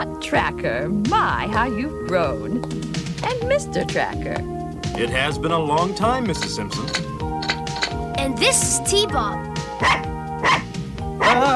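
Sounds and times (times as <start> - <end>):
speech: 0.2 - 7.1, 8.2 - 10.6
dog barking: 9.8 - 11.5.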